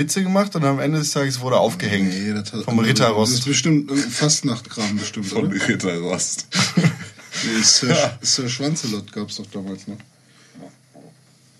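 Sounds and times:
speech: 0.0 - 10.7
soft hiss: 0.0 - 11.5
laughter: 2.9 - 9.0
stomach rumbling: 10.6 - 11.5.

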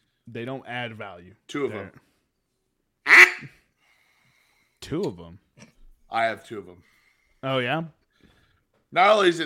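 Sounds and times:
speech: 0.3 - 2.1, 3.4 - 3.6, 4.9 - 8.0, 8.9 - 9.4
duck call blown, quacking: 3.1 - 3.5.

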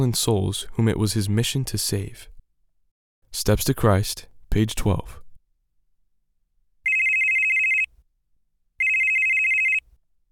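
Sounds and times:
speech: 0.0 - 2.3, 3.3 - 5.2
mobile phone ringing: 6.8 - 7.9, 8.8 - 9.9.

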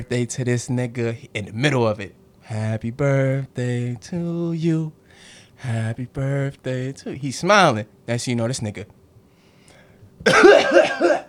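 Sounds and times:
speech: 0.0 - 9.0, 10.2 - 11.0
voice imitating a man coughing on a birthday cake: 10.2 - 11.2.

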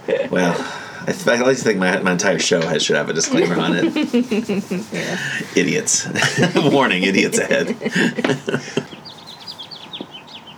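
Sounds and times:
laughter: 0.0 - 9.2
speech: 0.3 - 8.9
bright rapid bird chirps in a birdsong stinger: 8.4 - 10.5.

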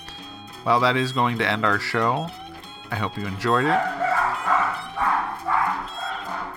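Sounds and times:
speech: 0.6 - 4.1
several dogs barking: 3.6 - 6.5.

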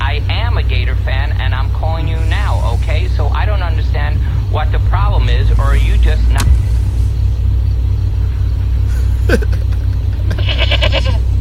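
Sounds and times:
low steady rumble: 0.0 - 11.3
laughter: 8.6 - 11.2
goat bleating: 10.0 - 11.3.

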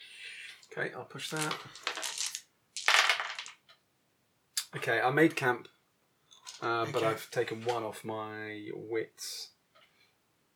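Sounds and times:
speech: 0.8 - 2.1, 4.7 - 5.8, 6.5 - 9.5
dice rolling on a table: 1.2 - 3.7.

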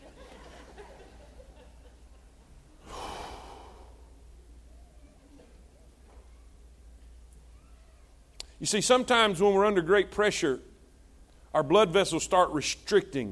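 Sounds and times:
laughter: 0.0 - 2.5
low steady hum: 0.0 - 13.3
deep breath in and out: 2.8 - 4.3
speech: 8.6 - 10.7, 11.6 - 13.3.

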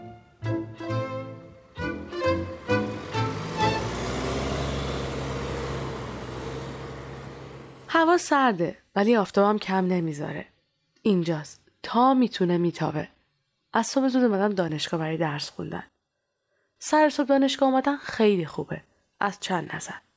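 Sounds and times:
bus engine throbbing: 0.4 - 7.8
speech: 8.0 - 15.9, 16.8 - 20.1.

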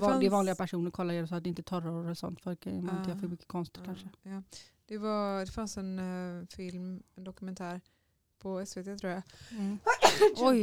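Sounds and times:
speech: 0.0 - 10.6
sneeze: 9.9 - 10.4.

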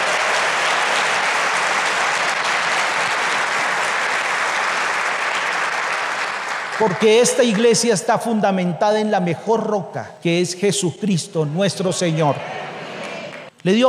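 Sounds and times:
church audience applauding: 0.0 - 7.9
speech: 6.8 - 12.7, 13.6 - 13.8.

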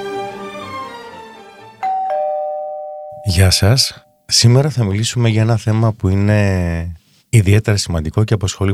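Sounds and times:
doorbell ding-dong chime: 1.8 - 3.9
speech: 3.4 - 8.7.

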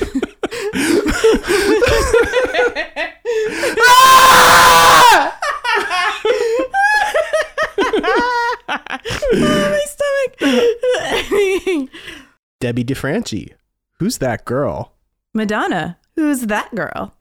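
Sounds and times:
laughter: 0.0 - 3.3, 5.2 - 9.7, 10.4 - 12.0
several people screaming together: 3.8 - 5.4
speech: 12.7 - 17.1.

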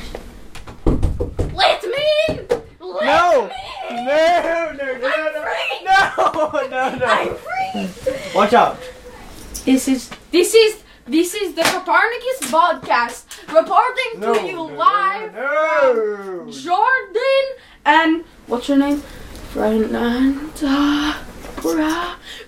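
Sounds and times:
big stick banging on a door: 0.8 - 1.6
people laughing: 3.3 - 9.1
speech: 8.5 - 8.9, 9.7 - 22.4.

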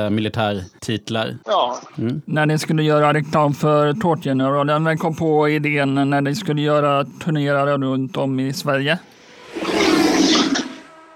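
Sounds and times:
speech: 0.0 - 9.2
loud motorcycle roaring past: 9.3 - 11.1.

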